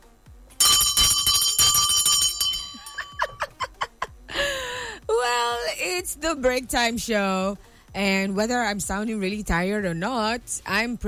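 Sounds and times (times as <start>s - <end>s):
loud bell ringing with a bright metallic tone: 0.6s - 3.6s
laughter: 3.2s - 4.5s
speech: 6.0s - 11.0s.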